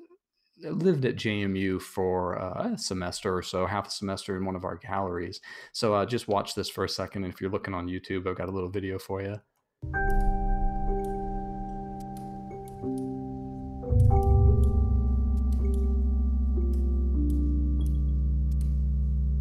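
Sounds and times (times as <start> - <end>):
speech: 0.6 - 10.3
layered electronic tones triggered by bubbles rising in water tubes: 9.8 - 19.3.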